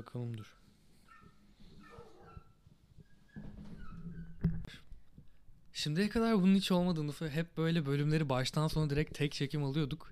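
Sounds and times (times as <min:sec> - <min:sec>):
speech: 0:00.0 - 0:00.6, 0:05.8 - 0:10.1
dogs snarling, yelping and whimpering in a scuffle in the street: 0:01.0 - 0:04.1.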